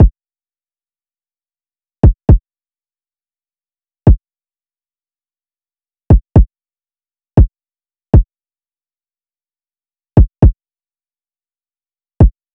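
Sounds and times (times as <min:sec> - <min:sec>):
kick drum loop at 118 BPM: 0:02.0 - 0:02.4, 0:06.1 - 0:06.5, 0:10.2 - 0:10.5.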